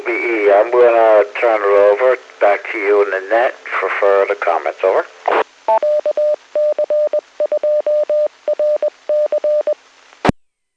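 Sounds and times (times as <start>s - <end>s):
faint radio static: 0.0s - 10.7s
speech: 0.1s - 5.9s
amateur radio repeater beeping call sign in Morse code: 5.7s - 9.8s.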